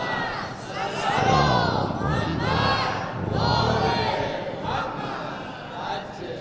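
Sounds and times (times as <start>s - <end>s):
large audience chanting religious salutations in unison: 0.0s - 6.3s.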